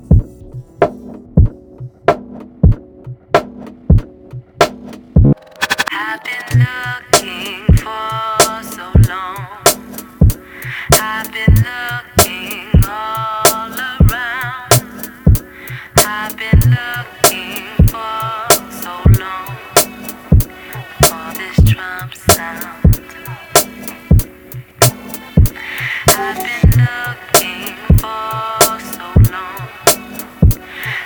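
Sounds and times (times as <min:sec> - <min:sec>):
drums: 0:00.0 - 0:31.0.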